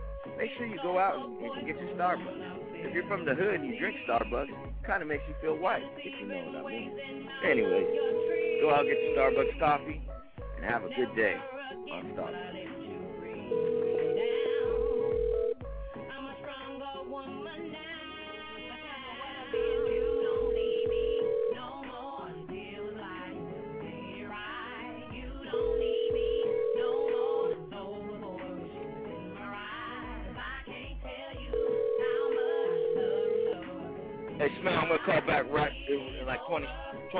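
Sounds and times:
music: 0.0 - 37.1
speech: 0.2 - 12.8, 36.3 - 37.1
telephone ringing before voicemail picks up: 7.4 - 9.9, 13.4 - 15.6, 19.4 - 22.1, 25.5 - 27.7, 31.5 - 33.8.

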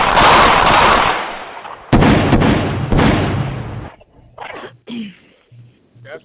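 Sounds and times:
gunshot sound effect: 0.0 - 3.9.

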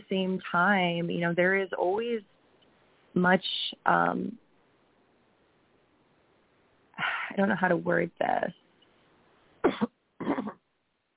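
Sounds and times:
speech: 0.1 - 2.4, 3.2 - 4.4, 7.0 - 8.6
throat clearing: 9.7 - 10.6.

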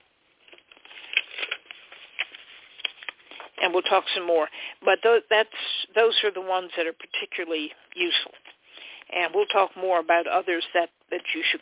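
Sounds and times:
paper rustling and crinkling as it is tucked between book pages: 0.4 - 3.6
speech: 3.7 - 8.4, 9.1 - 11.6.

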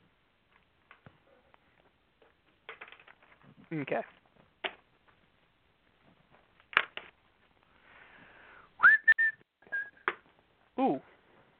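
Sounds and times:
speech: 3.7 - 4.2
breathy hiss: 7.7 - 8.7
person whistling: 8.8 - 10.1.

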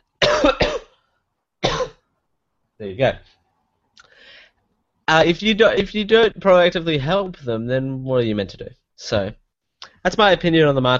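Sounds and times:
person with a lingering cough coughing harshly: 0.2 - 1.0, 1.6 - 2.0
speech: 2.8 - 3.4, 5.1 - 9.4, 10.0 - 10.9.

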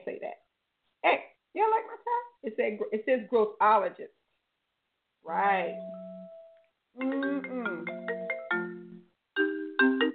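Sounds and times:
speech: 2.4 - 4.2, 5.2 - 6.0
mobile phone ringtone playing an incoming-call melody: 5.7 - 10.1.

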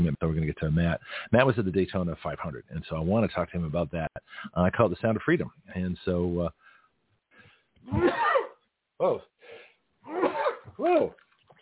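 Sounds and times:
speech: 0.1 - 6.6, 7.8 - 8.2, 9.0 - 9.3, 10.8 - 11.6
person sneezing: 7.8 - 8.6, 10.0 - 11.1.

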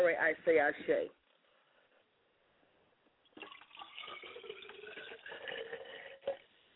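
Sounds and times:
speech: 0.2 - 1.2
liquid poured out as a libation to the ancestors: 3.3 - 6.5.

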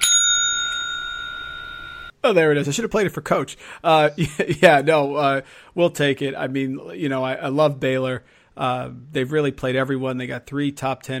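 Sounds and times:
single bright bell strike ringing: 0.0 - 2.2
speech: 2.2 - 11.1.

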